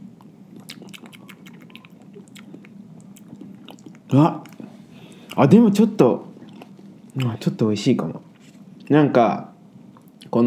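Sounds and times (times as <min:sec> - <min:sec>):
wet mouth clicks and smacks tasting a peppery long-pepper spice: 0:00.2 - 0:04.6
speech: 0:04.1 - 0:04.5, 0:05.4 - 0:06.3, 0:07.2 - 0:08.3, 0:08.9 - 0:09.5.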